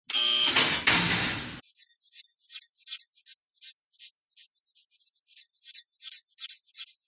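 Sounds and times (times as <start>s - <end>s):
laboratory door: 0.2s - 1.6s.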